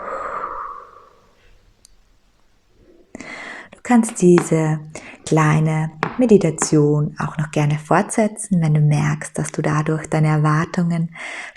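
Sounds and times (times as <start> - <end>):
forceful breathy exhale during a guided breathing meditation: 0.0 - 1.6
speech: 3.9 - 11.5.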